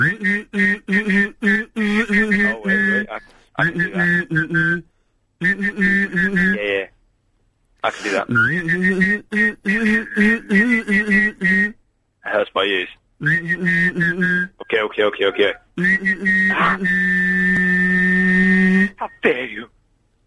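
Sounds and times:
speech: 0.0s - 1.2s, 3.6s - 6.8s, 7.8s - 17.7s, 18.8s - 19.8s
person humming a low steady tone: 0.0s - 4.8s, 5.4s - 6.6s, 7.9s - 11.8s, 13.2s - 14.7s, 15.4s - 19.2s
person whistling a higher melody: 0.0s - 4.8s, 5.4s - 6.6s, 8.3s - 11.7s, 13.2s - 14.7s, 15.8s - 19.0s.

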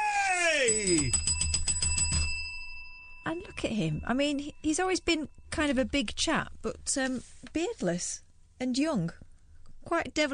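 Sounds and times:
speech: 0.7s - 1.3s, 3.3s - 9.2s, 9.8s - 10.3s
bright bell ringing in a rapid trill signalling quiz answers locked in: 0.7s - 6.0s.

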